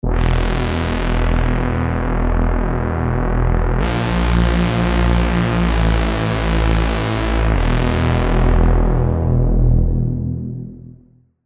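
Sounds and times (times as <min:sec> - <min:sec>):
reese bass synth: 0:00.0 - 0:11.2.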